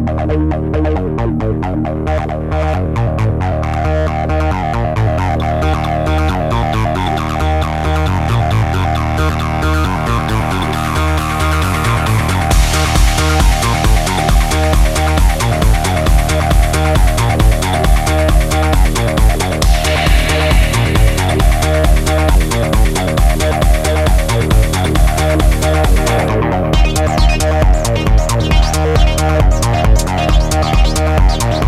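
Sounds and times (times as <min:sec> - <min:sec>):
iK Multimedia Uno Synth synthesizer and sequencer song: 0:00.2 - 0:31.6.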